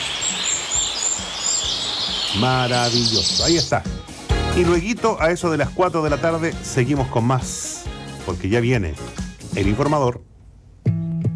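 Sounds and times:
small birds chirping: 0.0 - 4.0
speech: 2.4 - 4.0, 4.6 - 7.6, 8.3 - 10.3.

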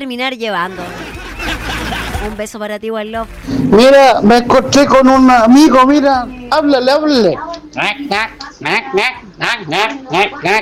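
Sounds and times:
speech: 0.0 - 10.6
laughter: 0.7 - 2.5, 7.8 - 10.6
rapid nasal duck-like quacks: 7.8 - 10.6.

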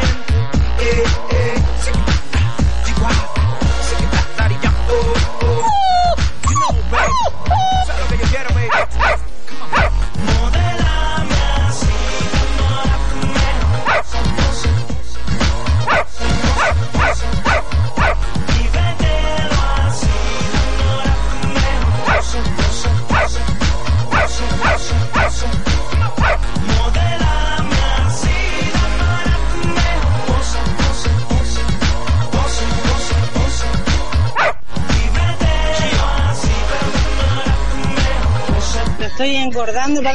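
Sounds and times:
loud driving music track with a steady beat: 0.0 - 40.1
household dogs barking and yipping: 5.6 - 8.0, 8.6 - 10.0, 13.8 - 14.1, 15.8 - 18.2, 22.0 - 22.3, 23.1 - 23.4, 24.1 - 25.4, 26.0 - 26.5, 34.4 - 34.6.

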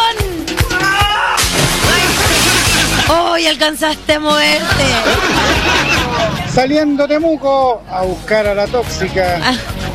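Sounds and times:
water splashing in a swimming pool: 1.0 - 3.5
laughter: 1.8 - 3.3, 4.4 - 6.7
speech: 3.5 - 6.0, 6.6 - 9.7.

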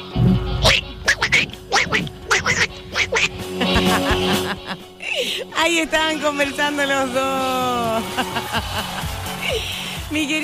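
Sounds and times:
cartoon duck voice quacking unintelligible babble: 0.6 - 3.3
laughter: 0.7 - 10.0
speech: 5.8 - 9.0, 10.1 - 10.4.

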